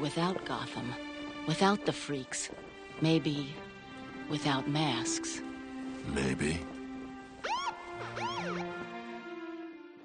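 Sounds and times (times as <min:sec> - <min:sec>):
speech: 0:00.0 - 0:03.7, 0:04.3 - 0:06.7
police siren wailing: 0:07.4 - 0:08.9.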